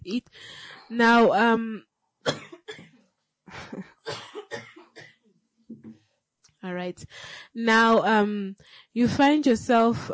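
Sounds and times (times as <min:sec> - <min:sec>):
speech: 0:00.0 - 0:02.9, 0:06.6 - 0:10.1
man clearing throat: 0:02.3 - 0:03.0, 0:03.6 - 0:05.9
man with a cold coughing harshly: 0:02.3 - 0:03.0, 0:03.7 - 0:05.2.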